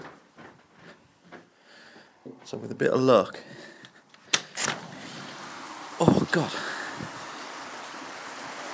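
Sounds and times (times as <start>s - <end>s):
speech: 2.5s - 3.6s, 6.3s - 6.7s
strong wind driving rain outdoors: 4.7s - 8.7s.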